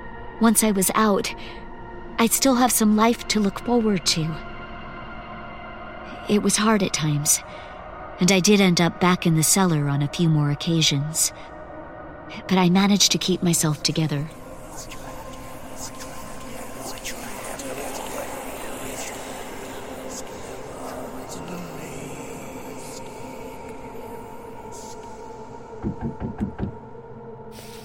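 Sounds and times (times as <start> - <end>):
speech: 0.4 - 1.6, 2.2 - 4.5, 6.3 - 11.5, 12.3 - 15.0
sharp knocks on a door: 25.8 - 26.8.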